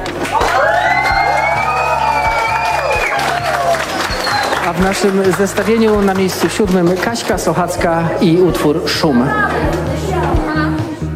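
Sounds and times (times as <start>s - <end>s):
dense applause for primary school pupils: 0.0s - 8.0s
loud whoops from a lively crowd: 0.2s - 5.2s
whistles from a lively crowd: 0.6s - 4.7s
speech: 4.7s - 10.8s.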